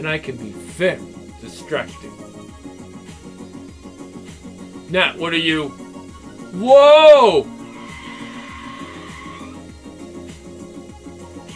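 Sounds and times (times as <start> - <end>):
speech: 0.0 - 2.6, 4.9 - 5.8, 6.5 - 7.5
car tires skidding and squealing: 7.5 - 9.8.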